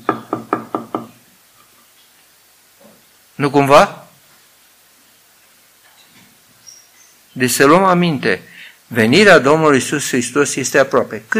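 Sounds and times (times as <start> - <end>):
firm knocks on a door: 0.0 - 1.2
speech: 3.4 - 4.0, 7.4 - 11.3.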